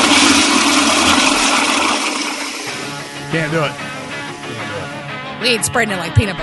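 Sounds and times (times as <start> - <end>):
toilet flushing: 0.0 - 4.6
speech: 3.3 - 3.8, 5.4 - 6.4.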